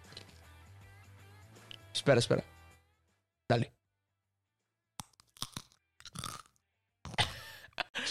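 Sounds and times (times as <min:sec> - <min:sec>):
speech: 0:02.0 - 0:02.5, 0:03.5 - 0:03.8
close-miked crunching and chewing of potato chips: 0:05.0 - 0:07.2.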